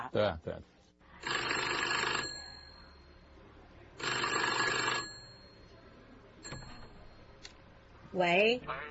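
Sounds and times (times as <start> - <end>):
speech: 0.1 - 0.8, 8.1 - 8.9
mechanical metal bell of 1910 American telephone ringing: 1.2 - 3.3, 4.0 - 5.8, 6.4 - 7.4.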